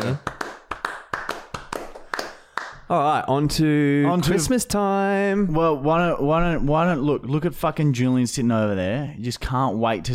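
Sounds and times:
hands clapping: 0.0s - 2.9s
speech: 2.9s - 10.1s.

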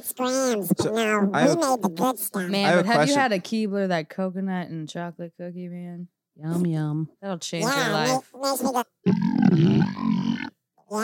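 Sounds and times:
speech: 0.0s - 11.0s
long low burp: 9.0s - 10.6s.

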